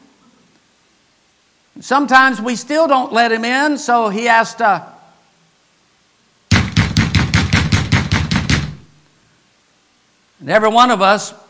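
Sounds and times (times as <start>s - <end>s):
speech: 1.8s - 4.9s, 10.5s - 11.4s
loud knocking: 6.5s - 9.0s.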